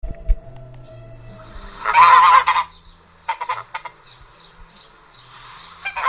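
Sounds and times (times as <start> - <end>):
low hum: 0.0 - 5.4
domestic Italian goose honking: 1.2 - 4.2, 5.3 - 6.0.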